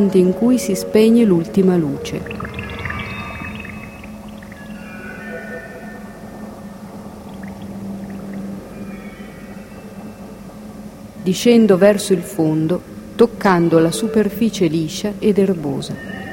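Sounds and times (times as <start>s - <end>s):
speech: 0.0s - 2.5s, 11.3s - 16.2s
faint drifting underwater tonal whines and hums: 0.0s - 16.3s
underwater low rumble: 1.4s - 11.2s.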